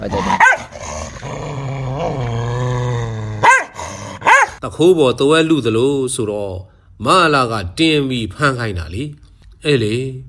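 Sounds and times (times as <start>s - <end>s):
speech: 0.0s - 0.5s, 4.7s - 10.2s
dogs growling: 0.0s - 4.6s.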